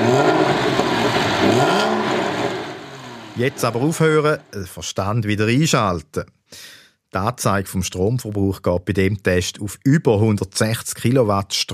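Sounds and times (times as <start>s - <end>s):
big petrol car engine revving: 0.0s - 4.5s
speech: 3.4s - 11.7s.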